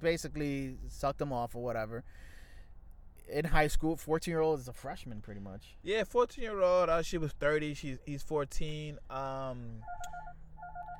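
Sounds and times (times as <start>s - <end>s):
speech: 0.0s - 2.4s, 3.3s - 10.4s
phone ringing with an incoming call inside a car: 9.8s - 10.9s.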